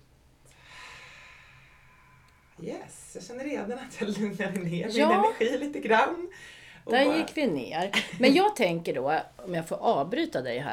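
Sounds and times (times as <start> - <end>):
slow deep exhale: 0.5 - 2.6
speech: 2.6 - 10.7.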